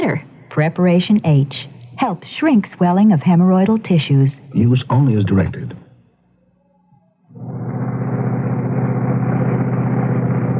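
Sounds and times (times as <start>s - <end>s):
speech: 0.0s - 5.8s
car engine turning over and running: 7.4s - 10.5s.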